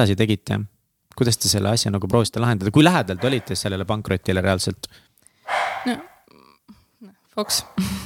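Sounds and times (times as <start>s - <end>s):
speech: 0.0s - 5.1s, 5.8s - 6.1s, 7.0s - 8.0s
puppy barking and yelping: 3.1s - 3.6s, 5.5s - 6.2s.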